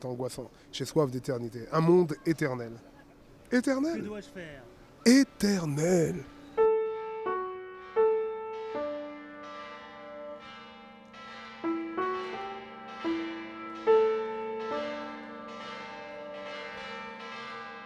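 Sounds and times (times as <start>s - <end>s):
speech: 0.0s - 6.4s
bells ringing with rich overtones: 5.1s - 17.8s.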